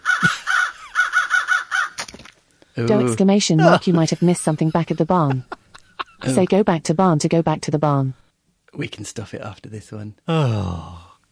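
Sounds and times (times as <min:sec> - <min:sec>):
crows circling overhead cawing: 0:00.0 - 0:02.1
laughter: 0:00.1 - 0:00.8, 0:02.9 - 0:06.5
speech: 0:02.8 - 0:05.6, 0:06.2 - 0:11.3.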